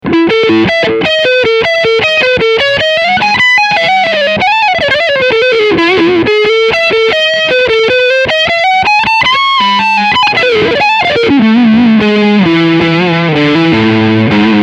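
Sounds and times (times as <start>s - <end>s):
electric guitar on front humbucker with overdrive: 0.0s - 14.6s.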